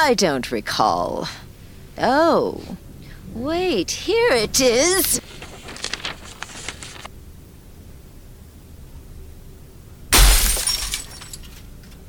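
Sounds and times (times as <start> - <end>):
speech: 0.0 - 1.4, 2.0 - 5.4
glass shattering: 10.1 - 11.7.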